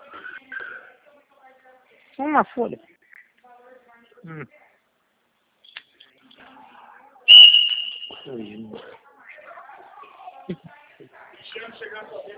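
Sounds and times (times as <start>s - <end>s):
speech: 2.2s - 3.0s, 4.2s - 4.6s, 8.2s - 9.0s, 10.5s - 10.8s
sharp shrill whistle blast: 7.3s - 8.3s.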